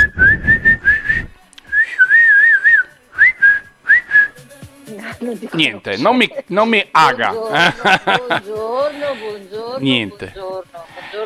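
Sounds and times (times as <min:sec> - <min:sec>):
person whistling to coax a sleeping bird to sing: 0:00.0 - 0:04.4
speech: 0:05.3 - 0:11.2
laughter: 0:07.4 - 0:09.4.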